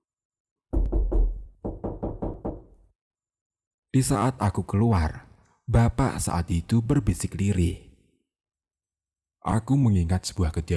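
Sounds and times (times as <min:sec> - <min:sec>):
knocking on a wooden bedroom door: 0:00.7 - 0:02.8
speech: 0:03.9 - 0:07.9, 0:09.4 - 0:10.7.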